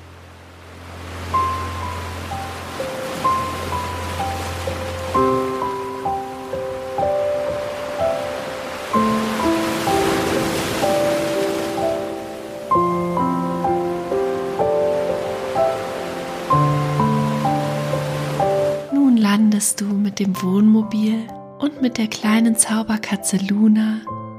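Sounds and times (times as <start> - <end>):
gentle sea waves washing onto a beach: 0.0 - 18.9
calm sustained music chords: 0.0 - 24.3
speech: 20.3 - 24.2.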